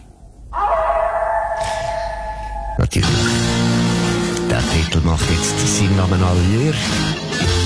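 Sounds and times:
wolf howling: 0.5 - 2.9
speech: 2.9 - 3.5, 4.6 - 7.5.

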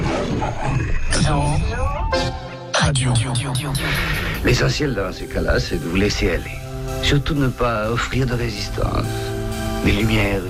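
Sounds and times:
lion roaring: 0.0 - 1.2
speech: 0.4 - 10.4.

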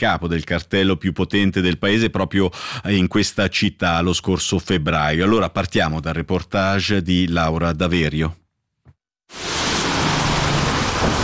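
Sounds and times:
speech: 0.0 - 8.4, 9.3 - 9.6
heavy rain pouring: 9.3 - 11.2.

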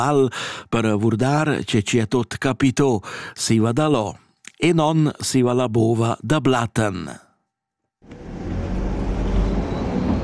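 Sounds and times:
speech: 0.0 - 7.2
road noise of a narrow mountain road: 8.0 - 10.2
postal bus engine driving along a narrow mountain road: 8.1 - 10.2.

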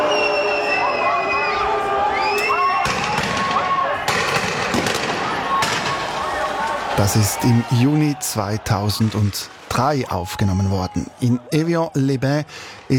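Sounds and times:
high whistles: 0.0 - 2.9
rioting crowd shouting in a Geneva street: 0.0 - 12.9
speech: 7.0 - 12.9.

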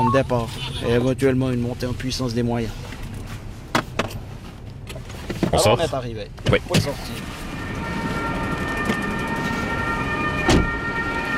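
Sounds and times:
speech: 0.0 - 2.9, 5.5 - 7.4
loud rumble of traffic or engine noise: 0.0 - 11.3
ambulance siren: 6.9 - 11.3.

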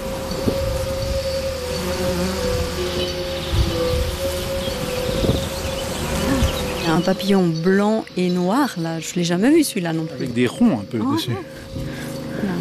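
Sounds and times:
bees buzzing around hyssop flowers: 0.0 - 12.5
speech: 7.0 - 11.8.

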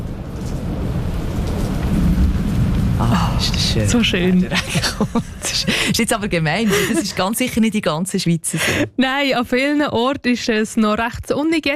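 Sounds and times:
deep low thunder rumbling: 0.0 - 9.7
rain pouring: 0.0 - 9.8
speech: 3.4 - 11.7
laughter: 4.4 - 7.4.

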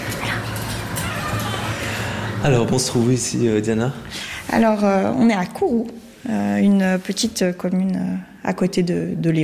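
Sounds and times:
dog whimpering and yipping in greeting: 0.1 - 2.1
speech: 2.4 - 9.4.

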